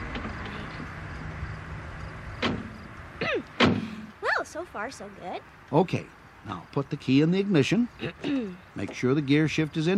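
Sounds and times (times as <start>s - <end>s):
door of an old beat-up truck opening and slamming shut: 0.0s - 0.7s, 2.4s - 2.9s, 3.5s - 4.1s
speech: 4.6s - 9.9s.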